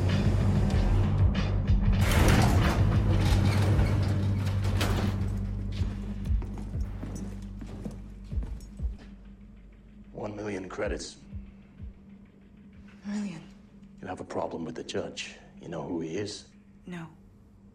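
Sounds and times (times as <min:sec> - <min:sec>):
elevator rising up its shaft with a loud mechanical rumble: 0:00.0 - 0:06.9
clanking, ratcheting and creaking of an elevator: 0:02.0 - 0:05.7
speech: 0:10.8 - 0:11.2, 0:14.1 - 0:17.2.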